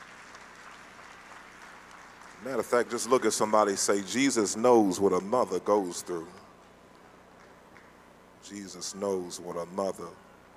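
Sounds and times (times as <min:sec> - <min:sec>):
audience clapping in a large room: 0:00.0 - 0:08.0
speech: 0:02.4 - 0:06.4, 0:08.5 - 0:10.3.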